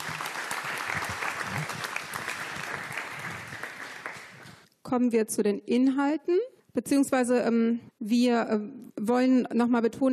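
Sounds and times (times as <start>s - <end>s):
audience applause with many hands clapping: 0.0s - 4.6s
speech: 4.9s - 10.1s.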